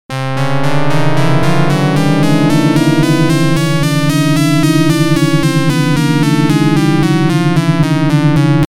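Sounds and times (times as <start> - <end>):
organ playing a tune: 0.1 - 8.6.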